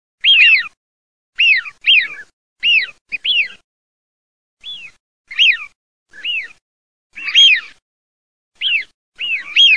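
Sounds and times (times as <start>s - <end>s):
fischione bird calling: 0.2s - 0.8s, 1.4s - 3.6s, 4.6s - 7.8s, 8.6s - 9.7s.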